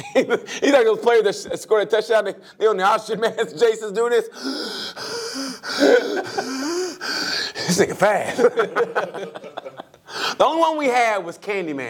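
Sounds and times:
speech: 0.1s - 11.8s
person imitating heavy exhausted breathing and gasping: 4.3s - 8.0s, 10.0s - 10.4s
laughter: 5.4s - 10.2s.

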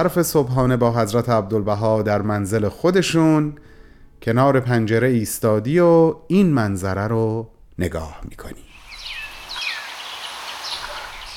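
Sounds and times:
speech: 0.0s - 8.7s
soft outdoor hiss: 0.0s - 11.3s
small sparrows chirping: 8.7s - 11.3s.

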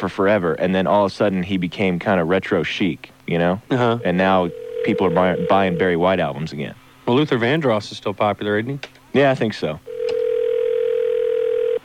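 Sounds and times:
speech: 0.0s - 9.9s
telephone ringing tone through the earpiece for an unanswered call: 4.0s - 6.0s, 9.9s - 11.8s.

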